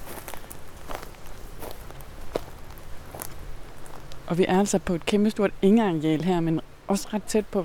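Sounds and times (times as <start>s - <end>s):
footsteps through tall wet grass on a large meadow: 0.0s - 4.3s
speech: 4.3s - 7.6s.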